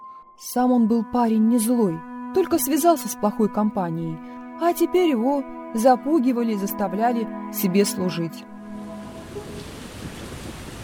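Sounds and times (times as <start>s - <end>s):
speech: 0.4s - 8.6s
heavy rain hiss: 8.7s - 10.8s.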